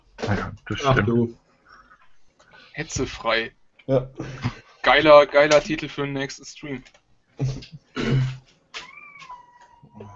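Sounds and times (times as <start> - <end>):
speech: 0.3 - 1.4, 2.8 - 8.3
cat meowing: 8.8 - 10.1.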